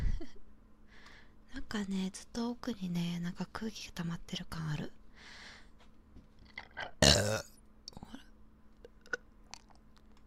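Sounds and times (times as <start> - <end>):
speech: 1.7 - 5.4, 7.2 - 7.5
short small burp: 6.6 - 7.6.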